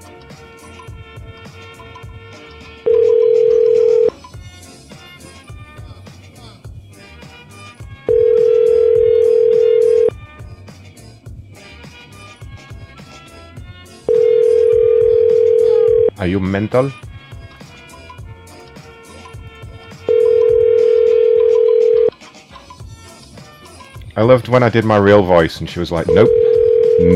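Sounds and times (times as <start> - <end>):
ringing tone of an unanswered outgoing telephone call: 2.9 - 4.2, 8.1 - 10.2, 14.1 - 16.2, 20.1 - 22.1, 26.1 - 27.1
speech: 16.5 - 17.1, 24.2 - 26.4.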